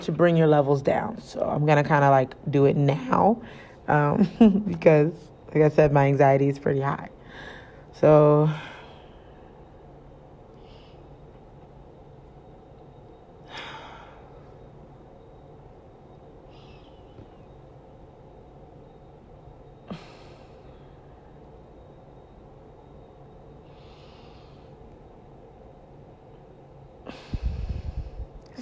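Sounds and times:
speech: 0.0 - 8.7
deep conscious breathing exercise: 7.2 - 7.9, 8.5 - 11.4, 13.4 - 14.8, 23.6 - 25.1, 27.0 - 28.5.

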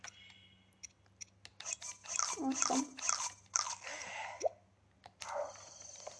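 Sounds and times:
speech: 2.4 - 3.1
crunchy chewing sound effect from a video game as a character eats: 3.0 - 4.0.

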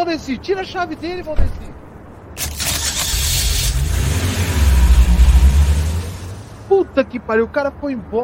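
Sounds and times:
speech: 0.1 - 1.8, 6.7 - 8.2
car engine starting, revving and driving away: 2.4 - 6.7.

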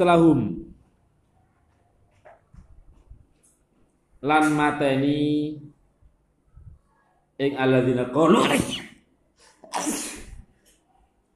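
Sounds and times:
speech: 0.0 - 0.6, 4.2 - 5.7, 7.4 - 8.9
loud sneezing: 8.3 - 8.9, 9.6 - 10.4.

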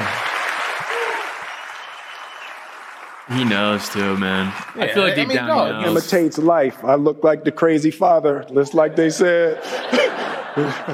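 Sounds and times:
audience applause: 0.0 - 6.0
speech: 3.3 - 10.9
laughter: 8.7 - 10.9.

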